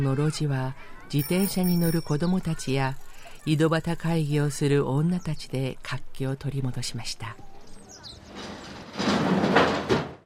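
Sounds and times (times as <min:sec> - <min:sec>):
speech: 0:00.0 - 0:07.5
real estate office door facing an alley sliding open: 0:08.0 - 0:10.2.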